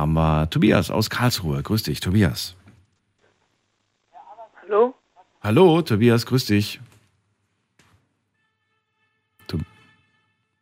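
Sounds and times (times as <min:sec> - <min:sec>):
speech: 0:00.0 - 0:02.6, 0:05.4 - 0:06.9, 0:09.5 - 0:09.7
car horn blast over a phone line: 0:08.4 - 0:10.5.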